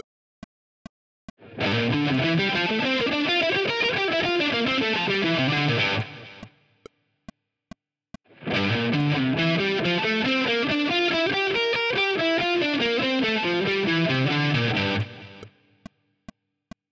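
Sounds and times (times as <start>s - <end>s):
guitar triad arpeggios: 1.4s - 6.5s, 8.4s - 15.5s.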